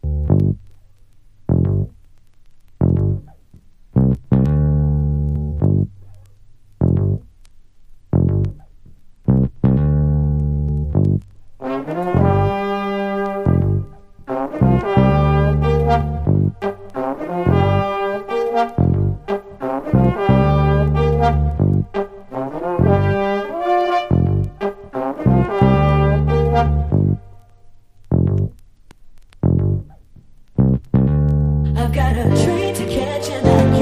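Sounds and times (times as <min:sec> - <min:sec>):
music pass without drums: 0:00.0 - 0:33.8.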